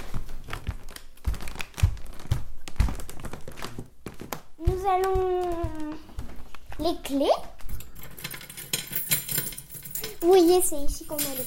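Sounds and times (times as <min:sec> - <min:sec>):
old wooden floorboards in a house creaking and crackling: 0:00.0 - 0:07.9
speech: 0:04.8 - 0:05.8, 0:06.8 - 0:07.5, 0:10.2 - 0:11.4.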